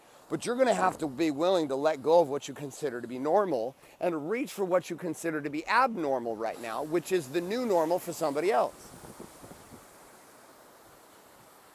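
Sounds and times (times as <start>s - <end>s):
ocean surf washing onto a beach in Orange County California: 0.0s - 11.7s
speech: 0.3s - 9.1s
wind buffeting the microphone: 8.5s - 10.0s.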